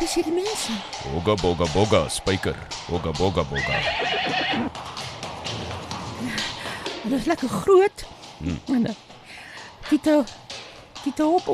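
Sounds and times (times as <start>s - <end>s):
speech: 0.0s - 4.9s, 7.1s - 9.1s, 9.9s - 11.5s
horse hooves clip-clopping: 0.0s - 11.5s
horse whinnying: 3.5s - 4.8s.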